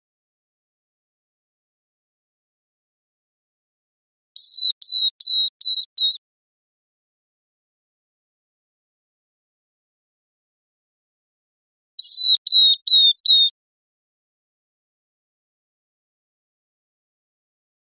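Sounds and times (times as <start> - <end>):
Northern beardless-tyrannulet calling with clear falling whistled notes: 4.4 - 6.2, 12.0 - 13.5.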